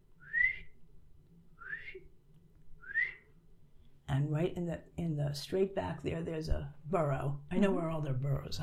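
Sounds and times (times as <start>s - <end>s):
groundhog giving sharp high whistles: 0.2s - 0.8s, 1.6s - 2.1s, 2.8s - 3.3s
speech: 4.2s - 8.6s.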